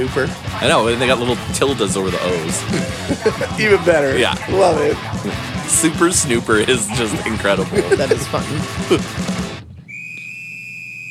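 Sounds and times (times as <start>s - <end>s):
loud dense punk music: 0.0s - 9.6s
speech: 0.1s - 9.3s
laughter: 0.6s - 9.2s
shrill steady whistle tone: 9.8s - 11.0s.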